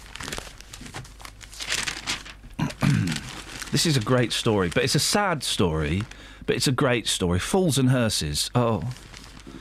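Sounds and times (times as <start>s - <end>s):
newspaper pages rustling and crinkling as they are turned: 0.0s - 6.2s, 8.6s - 9.5s
speech: 3.7s - 9.1s.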